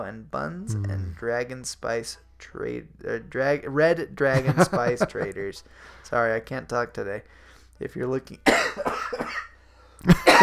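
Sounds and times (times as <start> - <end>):
speech: 0.0 - 10.4
person coughing: 0.7 - 1.2, 8.5 - 9.5, 10.1 - 10.4.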